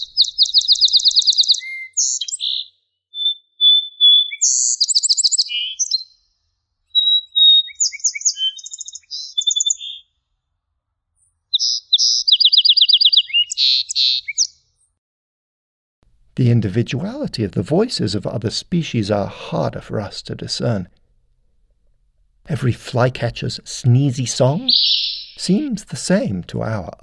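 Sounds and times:
male song sparrow singing varied songs: 0.0s - 6.2s, 6.9s - 10.1s, 11.5s - 14.6s, 24.4s - 25.4s
speech: 16.4s - 21.0s, 22.6s - 24.8s, 25.5s - 27.0s.

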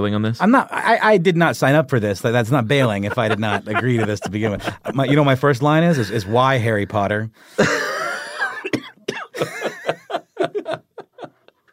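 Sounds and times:
speech: 0.0s - 7.9s
laughter: 2.4s - 7.0s, 7.6s - 11.7s
strained raspy breath: 7.4s - 7.7s
harsh coughing fit: 7.6s - 9.8s.

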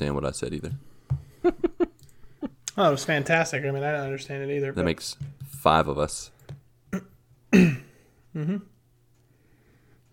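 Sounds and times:
speech: 0.0s - 1.6s, 2.8s - 7.8s, 8.4s - 8.7s
throat clearing to bring up phlegm: 6.9s - 8.7s.

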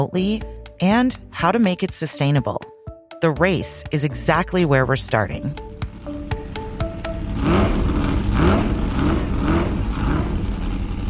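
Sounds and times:
speech: 0.0s - 5.7s
Formula One racing car engine at speed shifting through gears: 6.5s - 11.0s.

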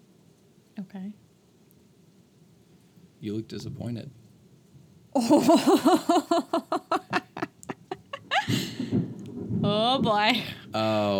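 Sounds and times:
steady rain: 0.0s - 11.1s
speech: 0.8s - 1.3s, 3.2s - 4.2s, 5.2s - 6.8s, 10.0s - 11.1s
low continuous rumble of thunder: 3.4s - 4.2s, 8.2s - 11.1s
laughter: 5.2s - 8.8s.

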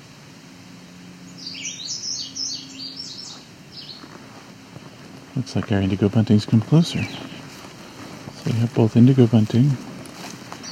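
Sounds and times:
low steady hum: 0.0s - 10.7s
red-eyed vireo singing: 1.0s - 4.1s, 5.4s - 9.8s, 10.6s - 10.7s
speech: 5.4s - 7.3s, 8.5s - 9.9s.

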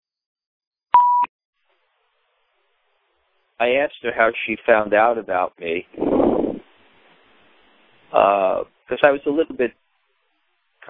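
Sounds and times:
short electronic beep from a phone: 1.0s - 1.3s
speech: 3.6s - 6.2s, 8.1s - 9.8s.

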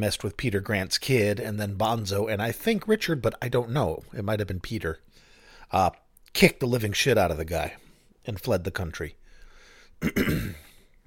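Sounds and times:
speech: 0.0s - 9.2s, 10.0s - 10.6s
throat clearing: 10.0s - 10.9s.

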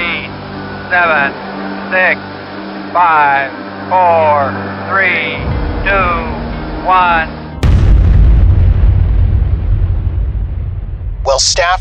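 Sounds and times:
speech: 0.9s - 7.4s, 11.2s - 11.7s
atomic bomb test explosion over the New Mexico desert: 5.4s - 11.6s.

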